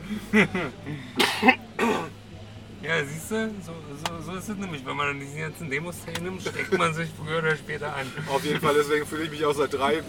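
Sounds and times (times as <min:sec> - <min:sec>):
laughter: 0:00.0 - 0:01.6
speech: 0:00.1 - 0:02.0, 0:02.8 - 0:10.0
rough throaty coughs: 0:01.2 - 0:02.1
throat clearing: 0:01.2 - 0:02.1.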